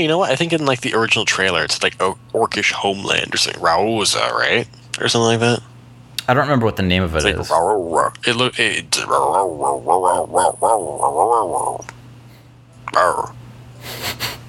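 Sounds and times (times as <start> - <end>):
speech: 0.0 - 5.7, 6.3 - 12.0, 12.9 - 14.3
dog growling and grunting: 7.4 - 8.1, 9.0 - 11.9
dog snorting: 9.0 - 11.9.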